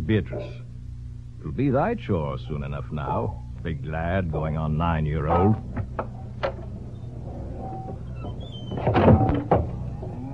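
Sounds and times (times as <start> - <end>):
low rumble: 0.0 - 10.3
speech: 0.1 - 0.7, 1.4 - 6.2
door creaking open and swinging shut: 5.3 - 10.3.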